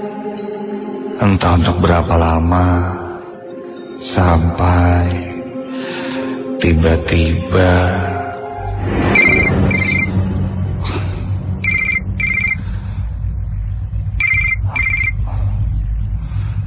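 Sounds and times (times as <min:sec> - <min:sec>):
speech: 0:01.2 - 0:03.0, 0:04.0 - 0:05.3, 0:06.6 - 0:08.1
mobile phone ringtone with bright electronic trills: 0:09.2 - 0:10.1, 0:11.7 - 0:12.6, 0:14.2 - 0:15.1
low hum: 0:10.3 - 0:16.6.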